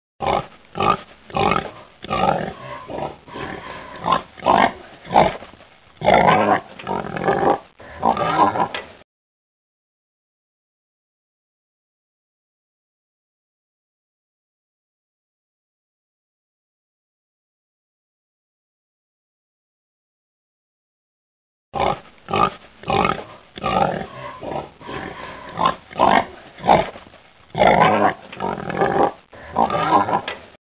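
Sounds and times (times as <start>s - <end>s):
pig oinking: 0.2s - 5.4s, 6.0s - 8.8s, 21.8s - 30.4s.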